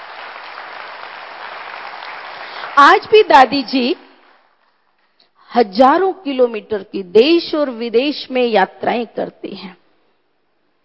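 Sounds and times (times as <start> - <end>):
loud applause from an audience: 0.0 - 3.4
speech: 2.8 - 4.0, 5.5 - 9.8.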